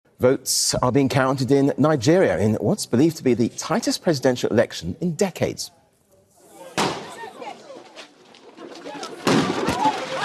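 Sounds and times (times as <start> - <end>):
speech: 0.2 - 5.8
gunshots fired in Lagos Nigeria during a presidential election: 9.0 - 10.2.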